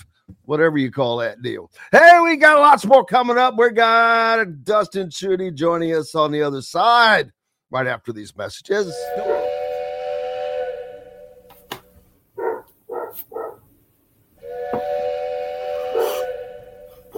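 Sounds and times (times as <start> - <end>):
speech: 0.5 - 9.5
train whistle: 8.9 - 11.6, 14.4 - 17.1
short barking-like bursts: 9.2 - 9.6, 12.4 - 13.7, 15.8 - 17.1.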